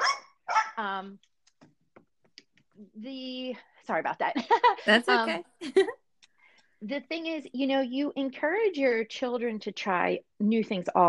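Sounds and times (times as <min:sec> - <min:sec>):
dogs barking: 0:00.0 - 0:00.8
speech: 0:00.8 - 0:01.4, 0:02.8 - 0:06.0, 0:06.8 - 0:11.0
laughter: 0:04.4 - 0:05.9.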